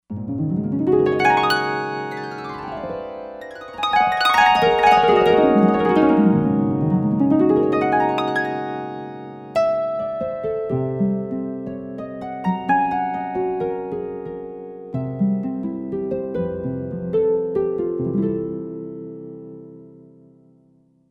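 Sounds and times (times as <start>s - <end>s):
harp: 0.1s - 20.0s.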